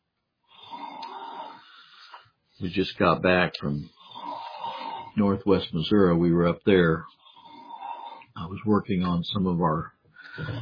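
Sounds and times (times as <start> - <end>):
person snoring loudly: 0.5 - 2.2, 3.8 - 5.3, 7.1 - 8.4, 10.3 - 10.6
speech: 2.6 - 4.0, 5.2 - 7.2, 8.4 - 10.6.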